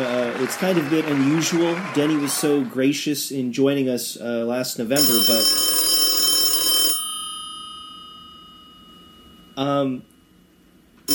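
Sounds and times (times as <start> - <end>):
speech: 0.0 - 5.8, 9.6 - 10.1
telephone bell ringing for an incoming caller: 5.0 - 9.6.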